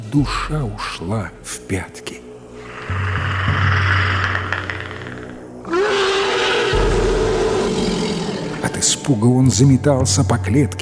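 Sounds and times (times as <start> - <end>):
dense outdoor forest background: 0.0 - 10.8
speech: 0.1 - 2.2, 8.6 - 10.8
loud deep animal roar in forest: 2.6 - 8.8.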